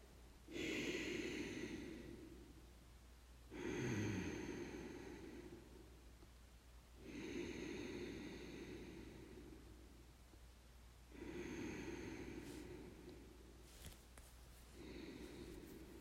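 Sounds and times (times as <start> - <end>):
slow ujjayi breathing through a closed mouth: 0.5 - 2.7, 3.5 - 6.0, 7.0 - 10.1, 11.1 - 14.0, 14.7 - 15.9.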